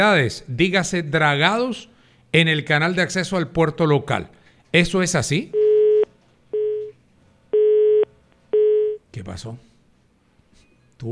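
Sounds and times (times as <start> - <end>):
speech: 0.0 - 5.6, 9.3 - 9.7
telephone busy tone beeps after a dropped call: 5.5 - 6.9, 7.6 - 9.0.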